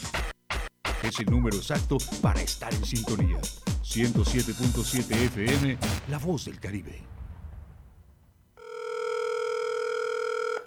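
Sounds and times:
speech: 1.0s - 7.2s
telephone ringing with an incoming call on a radio call-in line: 8.6s - 10.6s.

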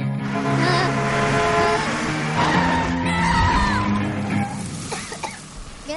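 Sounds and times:
loud dramatic orchestral music: 0.2s - 4.6s
short tire screech of braking car: 0.2s - 4.9s
car approaching and braking hard to a stop: 0.2s - 5.8s.

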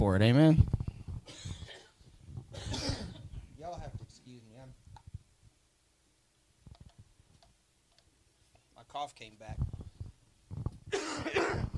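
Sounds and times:
speech: 0.2s - 1.4s, 9.0s - 9.7s
person coughing harshly: 1.3s - 3.3s, 10.9s - 11.7s.

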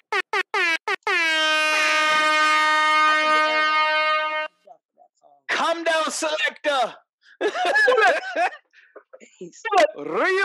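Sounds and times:
air horn sound effect blasts: 0.3s - 4.6s
laughter: 1.9s - 2.8s, 7.3s - 10.4s
speech: 6.8s - 8.6s, 9.4s - 10.4s.

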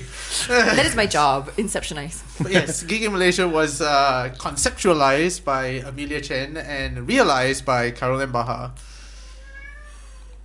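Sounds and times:
laughter: 0.0s - 8.7s
speech: 0.5s - 8.9s
cat meowing: 9.3s - 10.4s.

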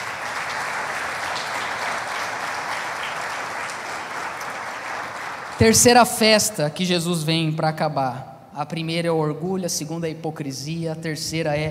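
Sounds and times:
audience applauding: 0.0s - 6.0s
speech: 5.6s - 11.6s.

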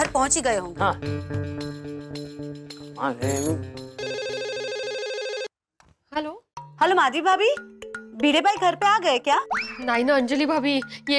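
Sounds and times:
speech: 0.2s - 1.6s, 3.0s - 3.8s, 6.9s - 11.1s
telephone ringback tone on an outgoing call: 4.0s - 5.5s.

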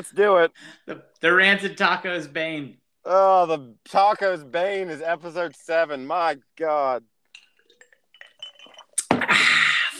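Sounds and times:
speech: 0.0s - 7.1s
ice cube clinking in a glass: 7.3s - 9.0s.

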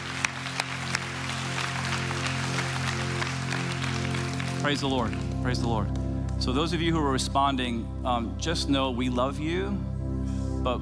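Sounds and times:
group hand claps and applause: 0.0s - 5.8s
sustained low keyboard or organ drone: 0.0s - 10.8s
speech: 4.6s - 9.9s, 10.6s - 10.8s.

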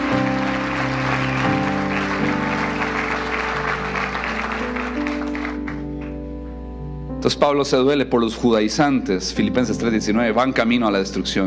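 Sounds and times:
audience applauding: 0.0s - 6.2s
organ or keyboard chords: 0.0s - 11.4s
speech: 7.2s - 11.4s.

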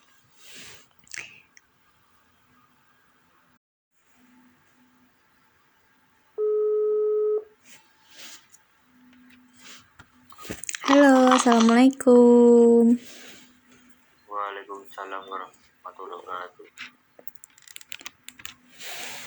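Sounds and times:
electronic phone ring tone of a call to Jakarta: 6.4s - 7.5s
speech: 11.4s - 13.2s.

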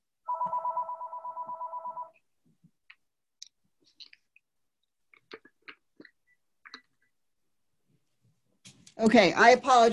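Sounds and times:
home telephone ringing: 0.2s - 2.3s
speech: 9.0s - 9.9s.

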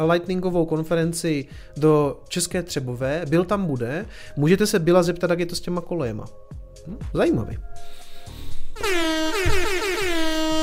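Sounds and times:
speech: 0.0s - 8.0s
air horn blast from soundboard button: 8.8s - 10.6s.

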